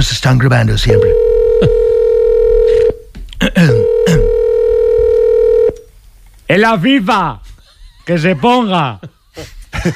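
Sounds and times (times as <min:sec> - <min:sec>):
speech: 0:00.0 - 0:01.8, 0:06.5 - 0:07.4, 0:08.0 - 0:09.9
telephone dial tone: 0:01.1 - 0:03.0, 0:03.8 - 0:05.8.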